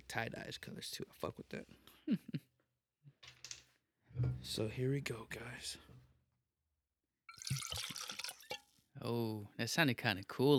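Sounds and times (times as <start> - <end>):
speech: 0.1 - 2.4, 4.2 - 5.9, 9.0 - 10.5
drink pouring into a tie-dye-colored cup: 7.3 - 8.7.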